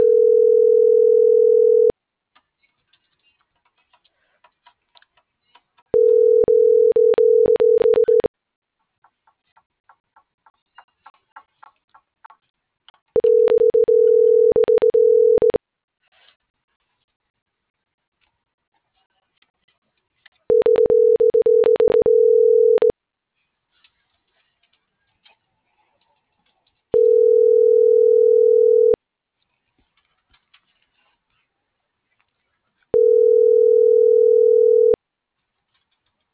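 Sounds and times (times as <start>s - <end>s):
telephone ringback tone of an unanswered call: 0.0s - 1.9s, 6.0s - 8.3s, 13.2s - 15.6s, 20.5s - 22.9s, 27.0s - 29.0s, 33.0s - 35.0s.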